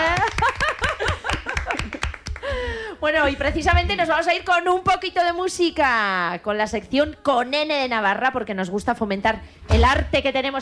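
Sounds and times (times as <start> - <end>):
laughter: 0.0 - 2.2
audience clapping: 0.0 - 2.7
speech: 3.1 - 10.5.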